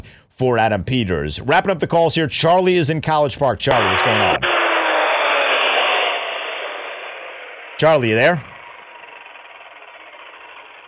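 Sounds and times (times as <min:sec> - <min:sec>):
speech: 0:00.4 - 0:04.6, 0:07.8 - 0:08.5
engine noise over a caller's phone line: 0:03.7 - 0:10.8.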